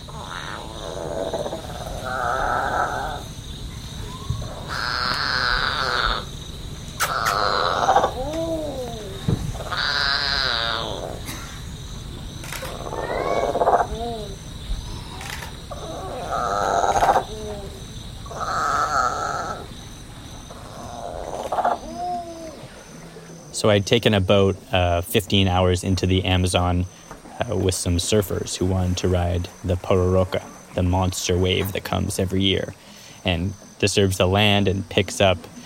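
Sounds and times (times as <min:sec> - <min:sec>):
monkey crying for its mother on the banks of the Amazon River: 0:00.0 - 0:03.3, 0:04.0 - 0:06.4, 0:07.0 - 0:11.4, 0:12.7 - 0:14.4, 0:15.0 - 0:19.7, 0:20.5 - 0:22.9
speech: 0:23.6 - 0:35.5.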